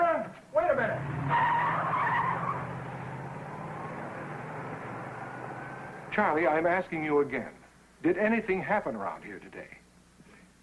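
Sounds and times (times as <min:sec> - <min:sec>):
car engine rumble: 0:00.7 - 0:06.2
car tires squealing while pulling away: 0:01.0 - 0:06.1
speech: 0:06.2 - 0:09.8.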